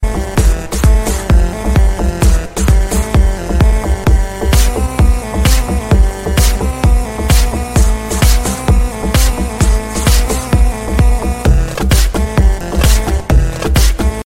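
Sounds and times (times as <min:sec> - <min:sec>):
Arabic remix ringtone music: 0:00.0 - 0:14.2.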